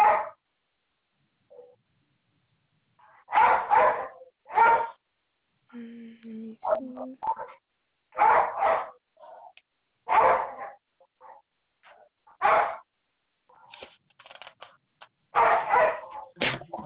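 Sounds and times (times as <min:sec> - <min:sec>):
dogs barking heard as if down a phone line: 0:00.0 - 0:00.4, 0:03.0 - 0:05.0, 0:06.6 - 0:12.9, 0:15.3 - 0:16.4
speech: 0:06.8 - 0:07.6.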